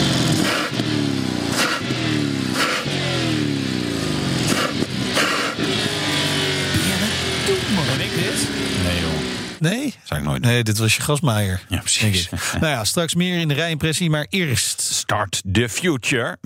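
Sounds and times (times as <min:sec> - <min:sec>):
Bentley Flying Spur V8 engine revving: 0:00.0 - 0:09.8
laughter: 0:06.7 - 0:08.5, 0:11.5 - 0:13.8
speech: 0:10.4 - 0:16.4.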